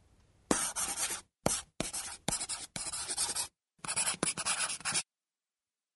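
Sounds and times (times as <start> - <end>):
pencil scratching across paper as a woman writes: 0.5 - 5.0.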